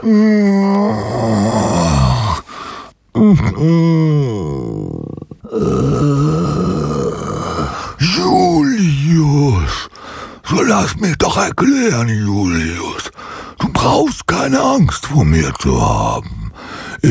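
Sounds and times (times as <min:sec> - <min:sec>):
speech: 0:00.0 - 0:01.5, 0:03.6 - 0:04.0, 0:10.8 - 0:12.9, 0:13.8 - 0:16.4
person groaning long and pitifully: 0:00.0 - 0:09.6, 0:15.8 - 0:17.0.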